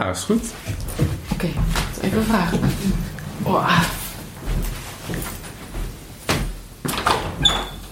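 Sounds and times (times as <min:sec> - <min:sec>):
speech: 0:00.0 - 0:00.8, 0:01.4 - 0:04.0
kitchen door opening and closing: 0:02.8 - 0:07.8.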